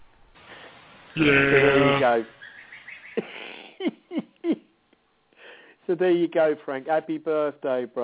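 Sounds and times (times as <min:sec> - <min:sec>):
goat bleating: 0:01.2 - 0:02.2
speech: 0:06.0 - 0:08.0.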